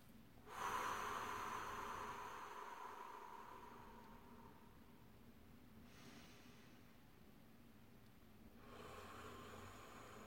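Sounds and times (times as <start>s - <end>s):
slow controlled breath out: 0.4s - 4.8s, 5.8s - 6.8s, 8.6s - 10.2s.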